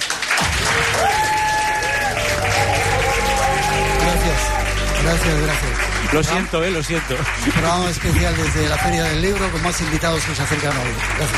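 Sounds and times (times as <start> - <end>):
audience applause: 0.0 - 11.3
speech: 5.1 - 11.3.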